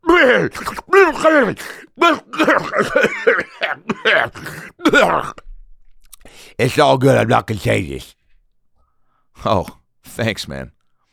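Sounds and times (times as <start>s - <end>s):
person imitating a woman coughing: 0.0s - 5.5s
speech: 0.2s - 5.4s, 6.5s - 8.2s, 9.4s - 10.8s.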